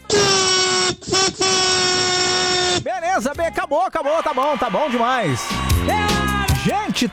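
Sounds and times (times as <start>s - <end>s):
car horn blaring during a honking protest: 0.0s - 2.8s
speech: 3.2s - 7.1s.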